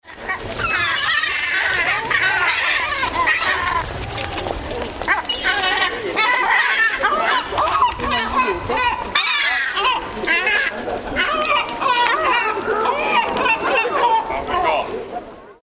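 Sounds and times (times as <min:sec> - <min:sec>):
yellow-legged gull: 0:00.0 - 0:14.9.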